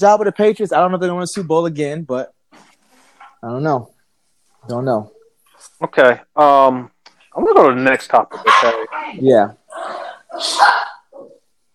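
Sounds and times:
speech: 0.0 - 2.4, 3.4 - 3.9, 4.6 - 10.9
dog barking: 8.4 - 9.1
dog yelping: 8.4 - 9.2, 10.3 - 11.3.

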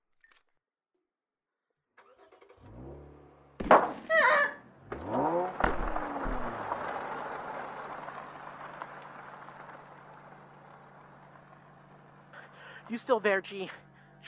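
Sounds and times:
car engine revving: 2.0 - 12.9
car engine rumbling: 2.0 - 14.2
car striking a person with heavy thuds: 3.6 - 4.2, 4.8 - 11.3
speech: 12.9 - 14.2.

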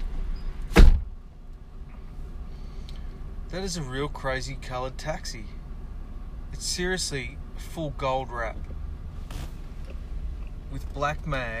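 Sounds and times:
low steady rumble: 0.0 - 11.5
heavy door slamming shut: 0.7 - 1.1
speech: 3.5 - 5.6, 6.5 - 8.7, 10.7 - 11.5.

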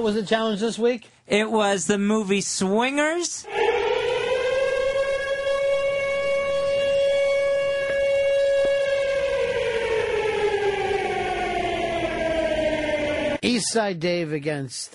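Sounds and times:
speech: 0.0 - 3.7, 13.7 - 14.9
siren wailing: 3.4 - 13.4.

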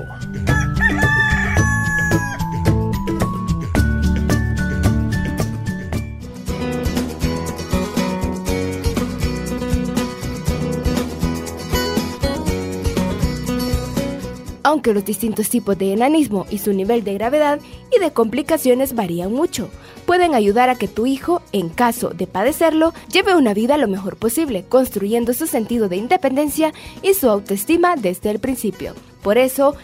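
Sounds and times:
busy steady music jingle: 0.0 - 17.4
rooster crowing: 0.5 - 2.7
speech: 14.7 - 29.8.

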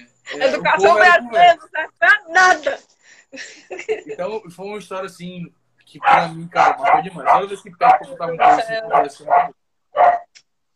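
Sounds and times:
speech: 0.0 - 10.2
laughter: 3.4 - 4.2
dog high-pitched yip: 6.0 - 7.4, 8.4 - 10.3
dog barking as someone arrives: 6.0 - 10.3.

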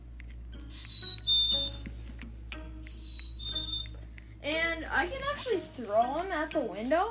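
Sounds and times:
squeaky toy bird squeezed in the hand: 0.7 - 1.9, 2.8 - 4.0
speech: 4.4 - 7.0.

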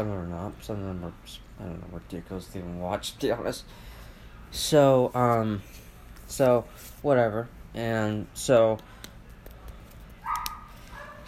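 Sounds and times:
speech: 0.0 - 3.9, 4.5 - 9.0
blue heeler and old dachshund barking: 10.2 - 11.2.

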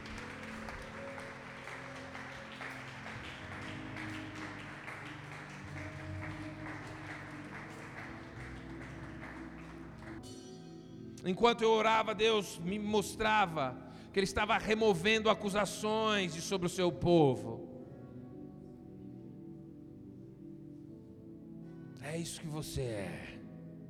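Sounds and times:
audience clapping: 0.0 - 10.3
low sustained musical drone: 0.0 - 22.0
speech: 11.2 - 17.7, 22.2 - 23.4.

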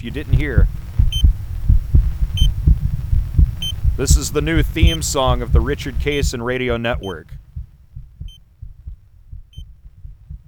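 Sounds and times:
speech: 0.0 - 0.8, 4.0 - 7.4
human heartbeat recorded through an internal microphone: 0.0 - 10.4
short bright electronic beeps: 1.1 - 1.3, 2.4 - 2.6, 3.6 - 3.8, 4.8 - 5.1.

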